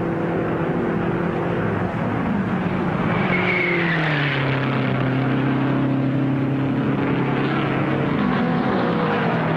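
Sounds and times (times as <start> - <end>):
racing car engines roaring during a race on track: 0.0 - 9.5.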